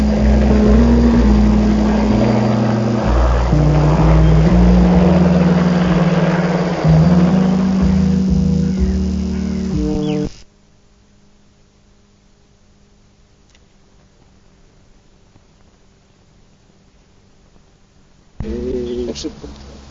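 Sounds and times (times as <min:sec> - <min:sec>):
helicopter engine and rotor landing at the airport in Toruń Poland: 0:00.0 - 0:10.2.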